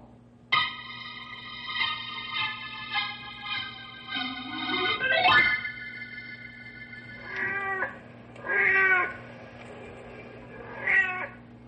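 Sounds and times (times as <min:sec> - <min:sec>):
low steady hum: 0:00.0 - 0:11.6
big tomcat on the prowl yowling and meowing: 0:07.2 - 0:09.2, 0:10.7 - 0:11.4.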